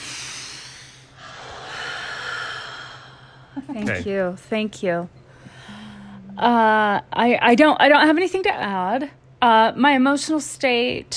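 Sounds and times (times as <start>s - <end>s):
deep cleansing breath: 0.0s - 3.6s, 5.3s - 6.4s
speech: 3.6s - 5.2s, 6.4s - 11.1s.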